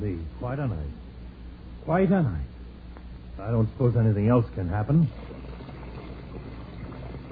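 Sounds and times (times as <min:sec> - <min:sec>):
speech: 0:00.1 - 0:01.1, 0:01.9 - 0:02.5, 0:03.4 - 0:05.4
bath water pouring into a tub: 0:05.1 - 0:07.3.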